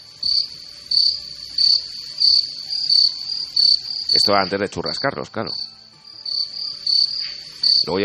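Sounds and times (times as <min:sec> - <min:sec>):
crickets chirping: 0:00.0 - 0:08.0
speech: 0:04.2 - 0:05.7.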